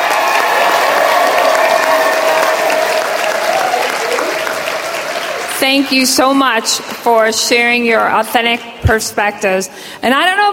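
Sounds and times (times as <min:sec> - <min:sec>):
audience applause: 0:00.0 - 0:06.1
speech: 0:05.7 - 0:10.5.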